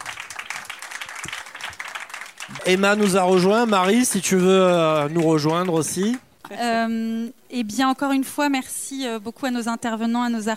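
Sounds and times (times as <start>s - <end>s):
audience applause: 0.0s - 6.3s
speech: 2.6s - 10.5s.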